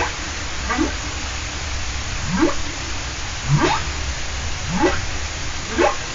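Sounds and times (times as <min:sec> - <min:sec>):
humpback whale calling underwater: 0:00.0 - 0:01.1, 0:03.4 - 0:04.0, 0:04.6 - 0:06.1
underwater water noise hiss: 0:00.0 - 0:06.1.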